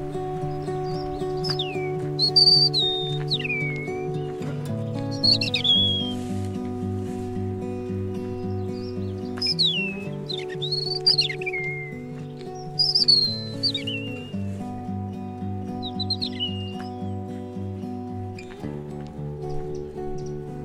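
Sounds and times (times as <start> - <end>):
European robin singing thin high trilling phrases: 0.0 - 20.6.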